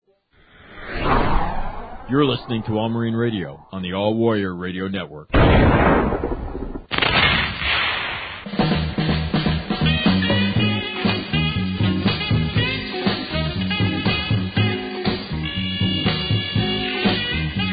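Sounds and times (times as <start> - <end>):
speech: 2.1 - 6.4
shotgun blast at the start of a song: 5.4 - 8.4
full band music with steady beats: 8.6 - 17.7.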